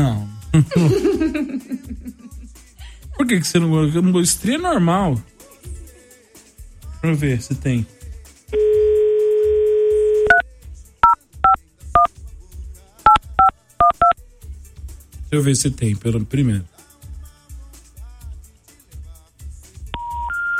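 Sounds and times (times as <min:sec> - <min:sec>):
speech: 0:00.0 - 0:02.2, 0:03.2 - 0:05.3, 0:07.0 - 0:08.6, 0:15.3 - 0:16.7
laughter: 0:00.6 - 0:03.4
busy signal of an occupied telephone line: 0:08.6 - 0:10.4, 0:20.0 - 0:20.5
phone dial tone: 0:08.6 - 0:10.4, 0:20.0 - 0:20.5
telephone keypad beeps: 0:09.7 - 0:10.4, 0:13.1 - 0:14.2, 0:20.0 - 0:20.5.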